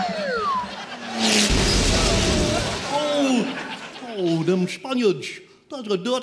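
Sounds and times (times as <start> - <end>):
laughter: 0.0 - 5.0
cannon firing with a loud blast: 1.2 - 3.6
speech: 4.5 - 6.2.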